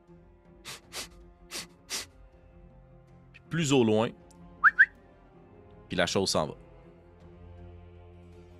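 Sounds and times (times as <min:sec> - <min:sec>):
large creature breathing heavily: 0:00.6 - 0:02.1
speech: 0:03.5 - 0:04.2, 0:05.9 - 0:06.6.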